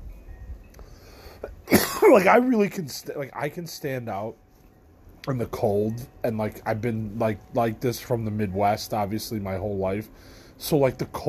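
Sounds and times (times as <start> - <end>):
person coughing after smoking weed: 1.6 - 2.3
speech: 2.1 - 4.4, 5.2 - 11.2.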